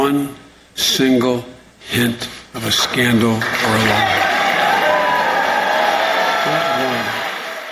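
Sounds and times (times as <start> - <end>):
speech: 0.0 - 4.2
crowd applauding: 2.8 - 7.7
person whooping: 4.0 - 7.3.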